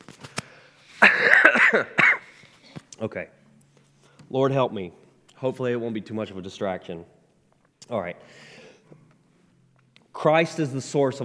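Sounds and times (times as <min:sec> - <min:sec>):
person coughing harshly with rattling coughs: 0:01.0 - 0:02.4
speech: 0:01.7 - 0:02.0, 0:03.0 - 0:03.4, 0:04.3 - 0:07.2, 0:07.9 - 0:08.5, 0:10.2 - 0:11.2.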